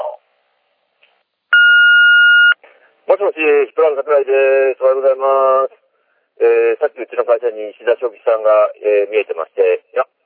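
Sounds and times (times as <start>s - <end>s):
answering machine electronic beep tone: 1.6s - 2.6s
speech: 3.2s - 5.8s, 6.4s - 10.2s.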